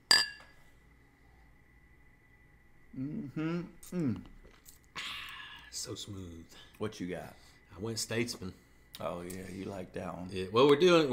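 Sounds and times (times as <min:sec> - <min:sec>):
glasses clinking together in a toast: 0:00.0 - 0:00.6
speech: 0:03.0 - 0:04.3, 0:05.8 - 0:11.1.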